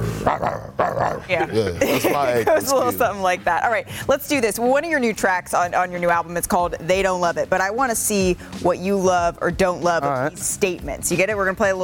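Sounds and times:
person imitating a growling dog: 0.0s - 1.8s
speech: 0.2s - 11.8s
laughter: 1.3s - 3.5s.

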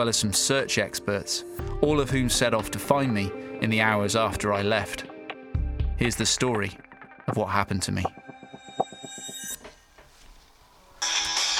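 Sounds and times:
speech: 0.0s - 5.1s, 6.0s - 8.2s
phone ringing with a rapid pulsing electronic trill: 10.9s - 11.5s.

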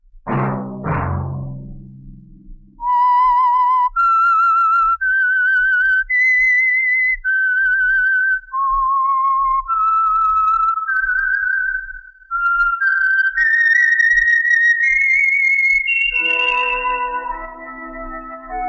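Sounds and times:
short low rumble: 0.3s - 3.2s
clear solo whistled melody in a slow eerie tune: 2.8s - 18.6s.

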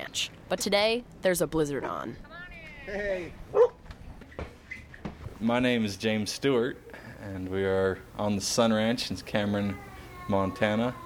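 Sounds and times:
speech: 0.2s - 2.3s, 2.9s - 3.7s, 5.4s - 11.0s
farm dogs barking outdoors at a ranch in Montana during a blizzard: 3.5s - 3.8s.

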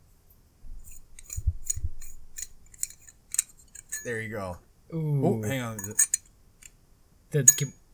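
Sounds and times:
metal scraping on threads of a stainless steel knife: 0.8s - 4.3s, 5.4s - 6.8s, 7.4s - 7.8s
speech: 4.0s - 6.2s, 7.3s - 7.8s.

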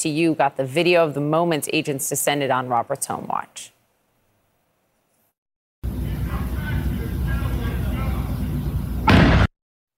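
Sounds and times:
speech: 0.0s - 3.8s
low rumbling noise: 5.8s - 9.2s
flashbang stun grenade detonation: 9.0s - 9.5s.

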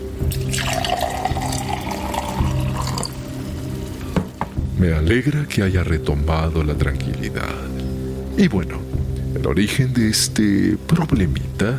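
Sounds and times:
water poured into a glass: 0.2s - 3.5s
speech: 4.8s - 7.8s, 8.4s - 11.7s.

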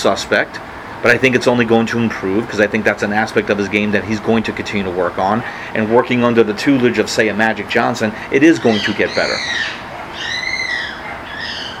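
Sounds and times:
speech: 0.0s - 9.8s
steady hiss: 0.0s - 11.7s
parrot squawking: 8.4s - 11.7s.

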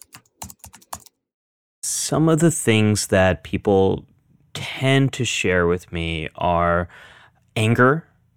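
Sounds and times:
typing on a laptop keyboard: 0.0s - 1.1s
speech: 2.1s - 4.1s, 4.8s - 8.1s.

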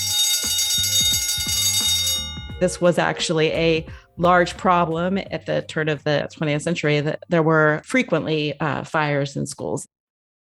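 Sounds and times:
loud electric fire alarm bell ringing: 0.0s - 3.8s
speech: 2.6s - 9.9s.

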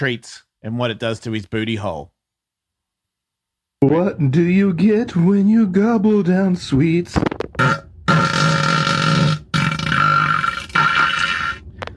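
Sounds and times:
speech: 0.0s - 2.2s, 3.8s - 7.8s
fart noises with buzzing rasp: 7.2s - 11.9s.

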